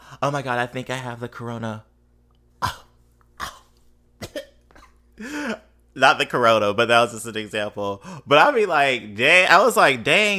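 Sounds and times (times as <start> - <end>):
faint steady hum: 0.0 - 10.3
speech: 0.2 - 1.9, 6.0 - 10.3
harsh coughs: 2.6 - 5.6.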